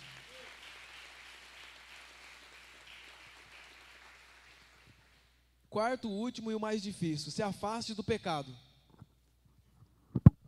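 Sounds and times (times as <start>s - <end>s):
audience applauding: 0.0s - 5.3s
speech: 5.8s - 8.7s.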